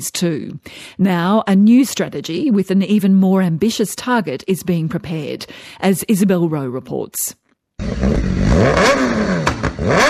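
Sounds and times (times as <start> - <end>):
speech: 0.0 - 10.0
motorbike engine revving: 7.8 - 10.0.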